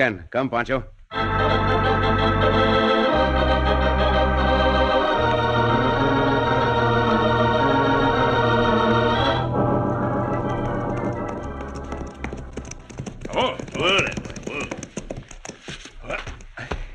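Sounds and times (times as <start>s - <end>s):
speech: 0.0s - 4.3s
orchestral music: 1.1s - 12.6s
horses' hooves clip-clopping: 10.6s - 16.8s.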